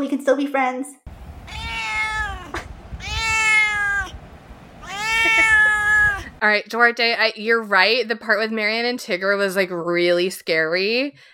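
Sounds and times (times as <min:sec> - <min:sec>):
speech: 0:00.0 - 0:01.0, 0:06.4 - 0:11.3
cat meowing: 0:01.4 - 0:04.2, 0:04.8 - 0:06.4.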